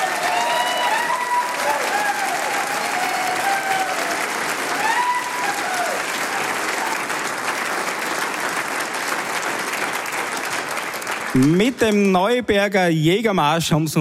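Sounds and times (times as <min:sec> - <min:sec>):
faint cheers and voices of audience: 0:00.0 - 0:07.0
large audience applauding in a hall: 0:00.0 - 0:12.4
speech: 0:11.4 - 0:13.9.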